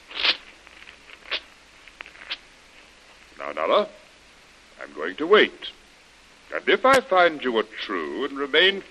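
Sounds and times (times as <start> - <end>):
faint paper rustling: 0.0 - 3.4
paper being torn up: 0.1 - 1.5
speech: 3.5 - 4.0, 4.8 - 5.8, 6.5 - 8.9.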